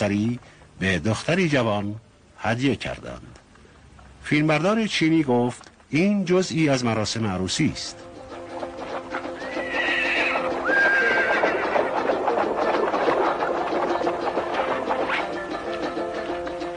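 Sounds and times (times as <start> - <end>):
speech: 0.0 - 3.4, 4.2 - 8.1
horse hooves clip-clopping during a wedding procession: 7.8 - 16.7
horse whinnying during a wedding procession: 9.2 - 12.5.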